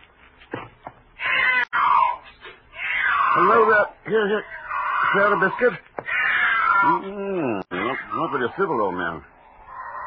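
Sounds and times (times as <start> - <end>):
thin black cat that came down a chimney yowling: 1.2 - 8.6, 9.4 - 10.0
speech: 3.4 - 5.9, 6.8 - 9.3.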